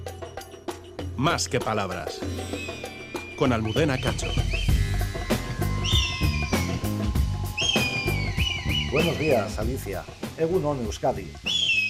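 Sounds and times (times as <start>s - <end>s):
steady low musical background: 0.0s - 11.8s
speech: 1.2s - 4.8s, 8.9s - 11.6s
red kite whistling call: 2.3s - 9.8s, 11.4s - 11.8s.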